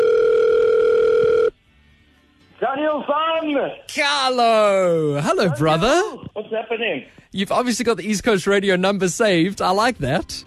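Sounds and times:
telephone ringback tone of an outgoing call: 0.0 - 1.5
speech: 3.0 - 10.4.

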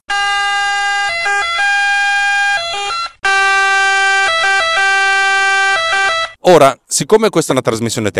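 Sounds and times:
two-tone ambulance siren passing with Doppler pitch shift: 0.0 - 6.4
speech: 6.5 - 8.1.

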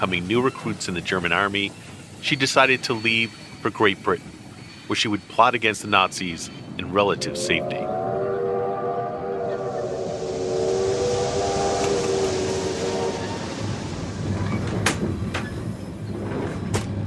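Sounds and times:
speech: 0.0 - 8.0
train bound for London rumbling along the rails: 0.0 - 17.0
drawn-out whistle-like tone: 7.0 - 15.7.

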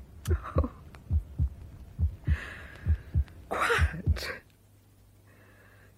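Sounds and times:
heartbeat thumping in lub-dub pairs: 0.3 - 4.4.

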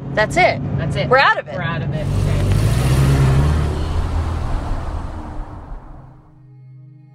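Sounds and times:
speech: 0.2 - 2.4
broad road noise: 1.7 - 6.4
car engine pulling away out of a traffic jam: 2.0 - 6.4.

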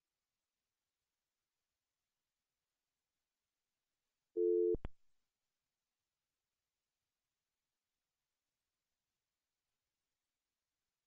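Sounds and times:
electronic telephone busy tone from a failed call: 4.4 - 4.8.

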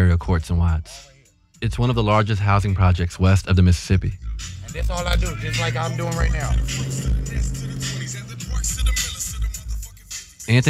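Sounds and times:
speech: 0.2 - 9.2, 10.5 - 10.6
pickup truck engine running heard from inside the cab in Watts: 4.2 - 9.9.

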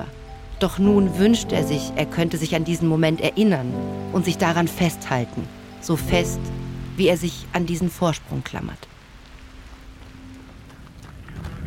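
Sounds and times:
speech: 0.0 - 8.9
steady rain falling in open terrain at a base camp: 0.0 - 11.6
woman's hurried footsteps splashing through the rain: 8.8 - 11.6.

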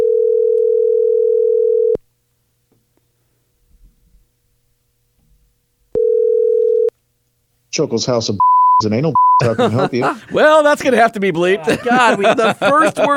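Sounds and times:
telephone line tone: 0.0 - 2.0, 6.0 - 6.9
faint low thumps: 3.6 - 4.4
speech: 7.8 - 13.1
laughter: 9.4 - 13.1.

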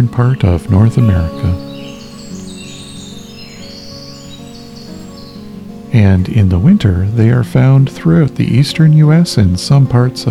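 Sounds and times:
speech: 0.0 - 1.6, 6.0 - 10.2
winter wren singing: 1.0 - 5.8.

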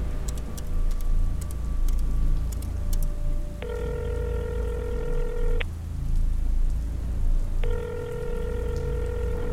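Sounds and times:
constant low rumble and hiss: 0.0 - 9.5
long steady electronic phone keypad tones: 3.6 - 5.7, 7.6 - 9.5.

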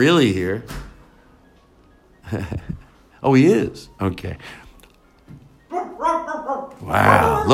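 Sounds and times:
speech: 0.0 - 0.8, 2.3 - 4.6, 6.8 - 7.5
puppy giving high-pitched yappy barks: 5.7 - 7.5.

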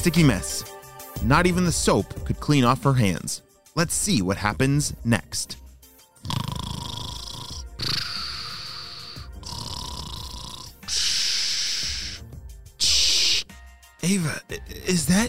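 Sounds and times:
speech: 0.0 - 5.6, 14.1 - 15.2
person snoring over a walkie-talkie: 6.2 - 11.2.

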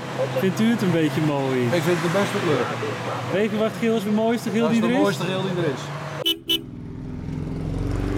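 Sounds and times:
low engine rumble of a golden car driving up: 0.0 - 8.1
speech: 0.2 - 6.0
car horn toots: 6.2 - 6.7.

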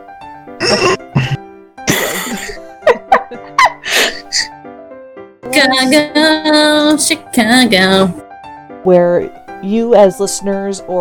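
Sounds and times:
throat clearing: 0.6 - 2.3
harsh coughing: 0.6 - 2.6
speech: 5.6 - 8.2, 8.8 - 11.0.

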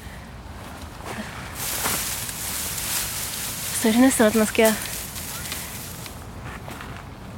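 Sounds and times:
bamboo stalks and leaves rustling when shaken by people: 1.5 - 6.5
speech: 3.8 - 4.9.

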